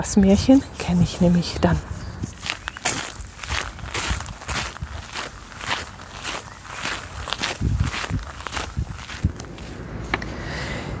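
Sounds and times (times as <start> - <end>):
speech: 0.0 - 1.9
footsteps walking along an outdoor trail path: 0.1 - 10.8.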